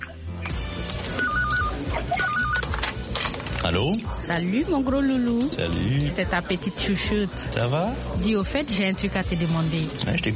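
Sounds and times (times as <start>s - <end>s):
busy noise: 0.0s - 10.3s
mobile phone ringing with a warbling electronic tone: 1.0s - 2.8s
speech: 3.7s - 10.3s.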